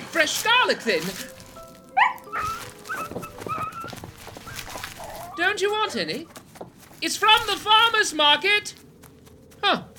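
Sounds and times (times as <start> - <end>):
speech: 0.1 - 1.4, 5.4 - 6.4, 7.0 - 8.8, 9.6 - 9.9
wolves poised to attack whimpering and growling: 2.0 - 5.4.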